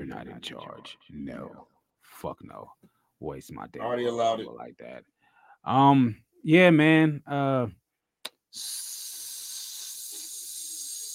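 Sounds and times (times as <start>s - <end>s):
speech: 0.1s - 7.8s, 8.5s - 9.0s
person hissing like a snake: 8.5s - 11.1s.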